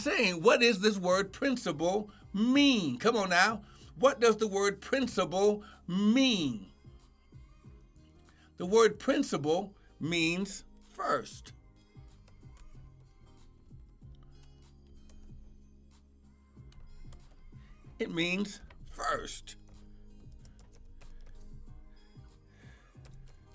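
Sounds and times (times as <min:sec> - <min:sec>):
speech: 0:00.0 - 0:06.7, 0:08.6 - 0:11.6, 0:18.0 - 0:19.6
typing on a computer keyboard: 0:19.6 - 0:21.5, 0:22.9 - 0:23.5.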